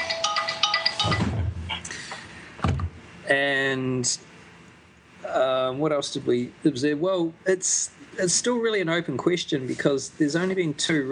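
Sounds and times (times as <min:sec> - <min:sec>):
mobile phone ringing with a bright pulsing electronic melody: 0:00.0 - 0:01.8
dull handling thumps and clunks: 0:02.6 - 0:03.0
speech: 0:03.3 - 0:04.3, 0:05.3 - 0:11.1.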